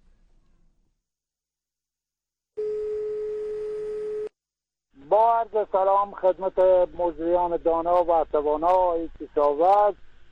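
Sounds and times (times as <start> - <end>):
telephone line tone as a call connects: 2.6 - 4.3
speech: 5.2 - 10.0.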